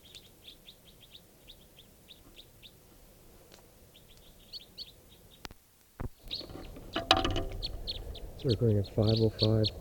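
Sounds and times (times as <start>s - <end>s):
flock of wild crossbills calling from a tall lodgepole pine: 6.2s - 9.7s
loud knocks: 6.9s - 7.7s
speech: 8.4s - 9.7s.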